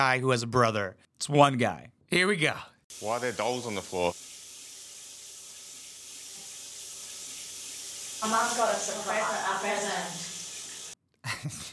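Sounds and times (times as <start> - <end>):
speech: 0.0 - 4.3, 8.2 - 10.3
shower running: 2.9 - 11.0.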